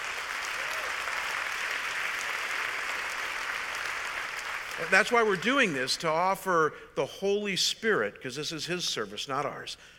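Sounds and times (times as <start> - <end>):
large crowd applauding: 0.0 - 6.2
speech: 4.8 - 9.9.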